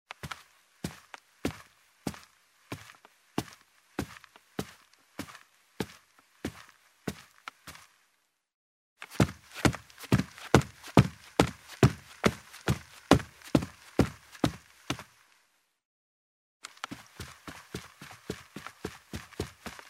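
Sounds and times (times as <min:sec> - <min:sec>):
shoe footsteps on a carpeted wooden staircase: 0:09.1 - 0:15.0.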